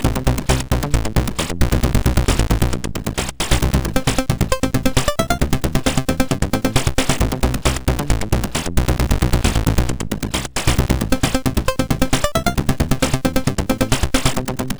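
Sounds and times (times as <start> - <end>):
chiptune intro music on a MOS6581R4 sound chip: 0.1 - 2.9, 3.5 - 10.0, 10.7 - 14.6.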